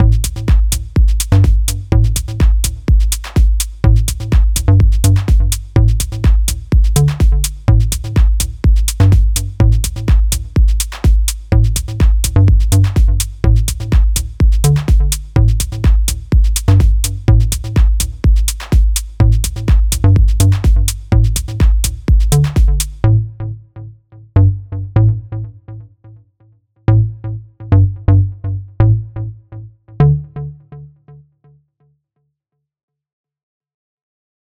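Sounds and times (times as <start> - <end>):
tech bass: 0.0 - 25.9, 26.9 - 30.8.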